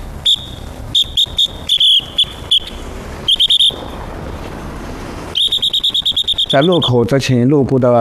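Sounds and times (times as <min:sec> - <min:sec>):
low street and traffic rumble: 0:00.0 - 0:07.9
auxiliary traffic police officer's whistle blasts at an intersection in Jiaxing China: 0:00.2 - 0:04.0, 0:05.3 - 0:07.0
speech: 0:06.5 - 0:07.9.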